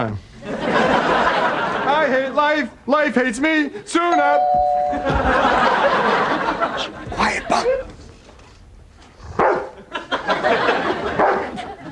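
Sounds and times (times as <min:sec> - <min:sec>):
speech: 0:00.0 - 0:00.3, 0:02.1 - 0:07.9
laughter: 0:00.4 - 0:02.4, 0:04.9 - 0:07.9, 0:09.8 - 0:11.9
dog barking: 0:09.4 - 0:09.8, 0:11.2 - 0:11.5.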